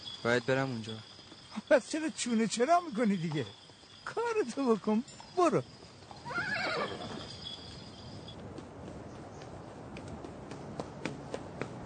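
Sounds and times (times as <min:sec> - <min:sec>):
hooves clopping: 0:00.0 - 0:11.8
horse-drawn cart moving along: 0:00.0 - 0:11.8
speech: 0:00.2 - 0:05.8
horse whinnying: 0:06.1 - 0:07.7.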